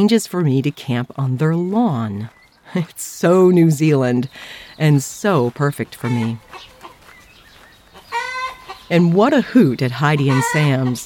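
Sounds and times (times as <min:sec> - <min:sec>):
speech: 0:00.0 - 0:06.7, 0:08.9 - 0:11.0
flock of chickens clucking: 0:02.0 - 0:11.0
chicken squawking loudly: 0:06.0 - 0:07.0, 0:07.9 - 0:08.9, 0:10.0 - 0:11.0.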